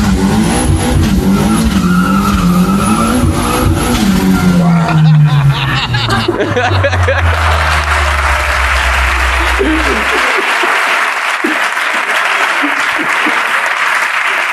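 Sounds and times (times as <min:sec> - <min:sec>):
car tires squealing and skidding: 0:00.0 - 0:11.0
speeding car engine revving hard: 0:00.0 - 0:13.3
indistinct voices: 0:01.8 - 0:14.5
laughter: 0:04.2 - 0:14.5.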